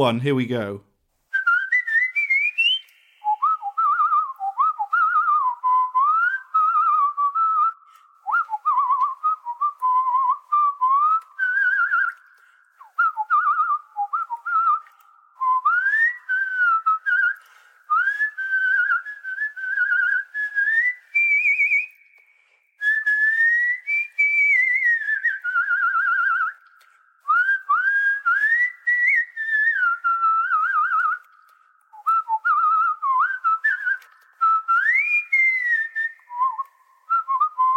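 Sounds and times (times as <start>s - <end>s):
speech: 0.0s - 0.9s
person whistling a TV theme tune with added reverb: 1.3s - 37.7s.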